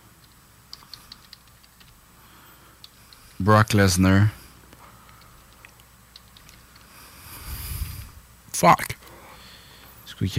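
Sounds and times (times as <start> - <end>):
quiet hiss: 0.0 - 10.3
typing on a computer keyboard: 0.2 - 2.0, 5.0 - 6.9
speech: 3.4 - 4.4, 8.6 - 9.0, 10.2 - 10.3.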